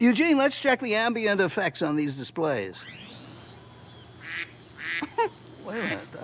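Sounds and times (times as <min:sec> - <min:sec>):
speech: 0:00.0 - 0:03.1, 0:04.4 - 0:06.2
faint hum: 0:00.0 - 0:06.2
duck quacking: 0:04.2 - 0:06.2.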